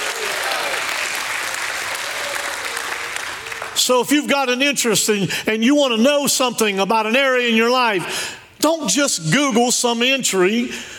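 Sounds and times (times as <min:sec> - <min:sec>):
audience applause: 0:00.0 - 0:03.8
speech: 0:03.8 - 0:10.9.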